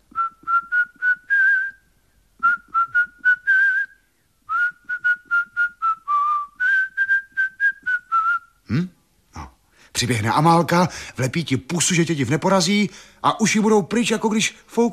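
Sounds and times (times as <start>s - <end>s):
person whistling a tune in a cottage garden: 0.1s - 1.8s, 2.4s - 8.6s
speech: 10.0s - 14.9s.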